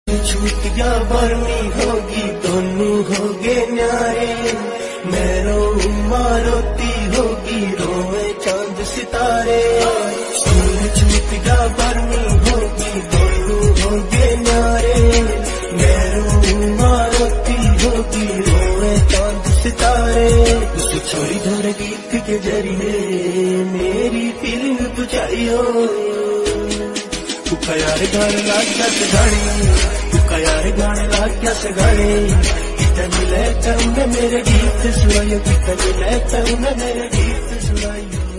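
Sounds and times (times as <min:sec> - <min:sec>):
Punjabi ringtone music: 0:00.1 - 0:38.3.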